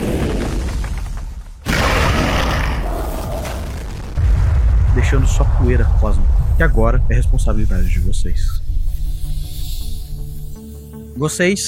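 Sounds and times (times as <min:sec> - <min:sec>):
huge explosion with roar of debris: 0:00.0 - 0:08.9
speech: 0:05.0 - 0:08.6, 0:11.2 - 0:11.6.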